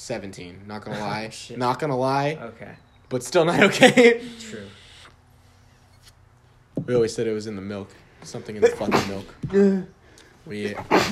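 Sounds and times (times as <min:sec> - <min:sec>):
speech: 0:00.0 - 0:04.8, 0:06.8 - 0:11.0
person sneezing sharply: 0:08.7 - 0:09.8, 0:10.8 - 0:11.0.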